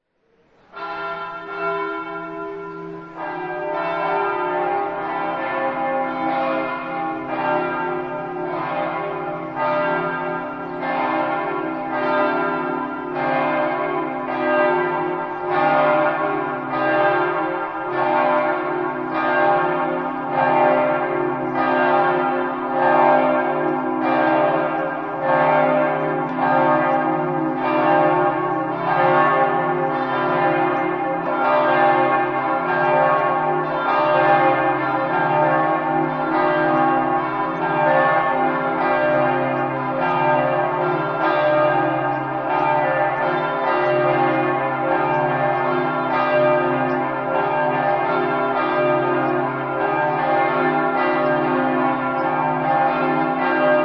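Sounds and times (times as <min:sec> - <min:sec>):
bells ringing in Cividale: 0:00.7 - 0:53.8.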